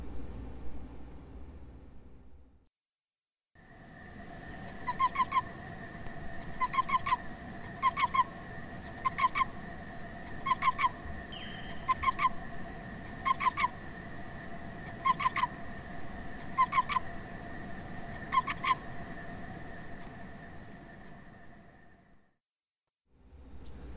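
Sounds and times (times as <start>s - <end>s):
constant droning hum: 0.0s - 2.6s, 3.6s - 22.1s, 23.2s - 23.9s
cricket chirping in a field slowed to quarter speed: 3.6s - 22.3s.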